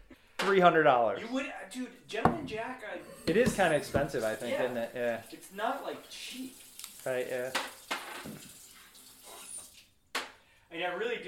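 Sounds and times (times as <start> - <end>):
speech: 0.5 - 8.5, 10.7 - 11.2
liquor poured down a sink drain: 3.1 - 9.9.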